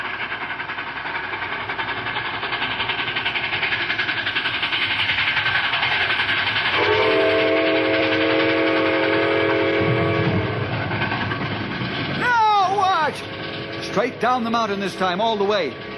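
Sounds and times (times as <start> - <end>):
approaching train rumbling: 0.0 - 15.9
train whistle blast: 6.7 - 10.6
speech: 14.2 - 15.9.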